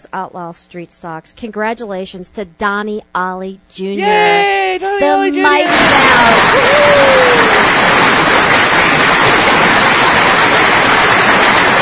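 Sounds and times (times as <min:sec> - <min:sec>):
speech: 0:00.0 - 0:08.0
whistle or cheer: 0:04.0 - 0:07.5
thundering applause of many hands clapping: 0:05.0 - 0:11.8.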